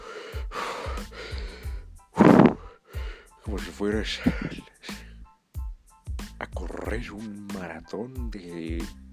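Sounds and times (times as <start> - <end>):
person taking deep heavy breaths: 0.0 - 3.5
speech: 3.5 - 4.7, 6.9 - 9.0.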